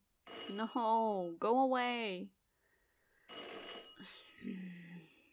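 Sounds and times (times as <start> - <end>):
telephone bell ringing: 0.3 - 0.7, 3.3 - 4.1
speech: 0.5 - 2.3, 4.0 - 4.8.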